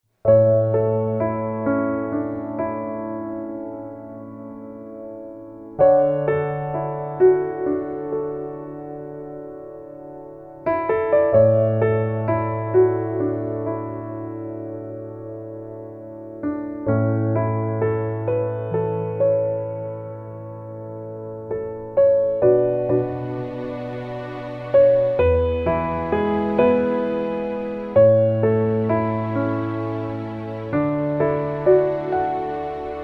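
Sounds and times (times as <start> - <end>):
contemplative piano soundtrack music: 0.2 - 33.0.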